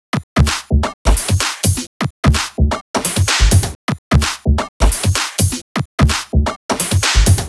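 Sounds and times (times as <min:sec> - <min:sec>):
heavy duty drum kit: 0:00.4 - 0:07.4.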